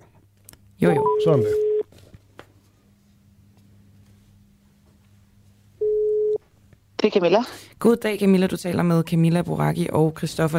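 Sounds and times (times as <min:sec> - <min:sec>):
telephone line hum: 0:00.0 - 0:10.5
speech: 0:00.8 - 0:01.7, 0:07.1 - 0:10.5
telephone ringback tone while placing a call: 0:00.9 - 0:01.8, 0:05.8 - 0:06.4.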